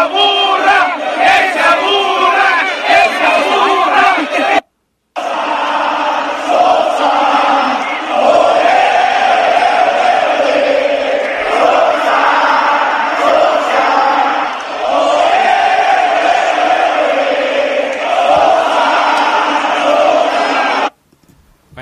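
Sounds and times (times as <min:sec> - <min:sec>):
huge football stadium crowd chanting in unison: 0:00.0 - 0:04.6, 0:05.2 - 0:20.9.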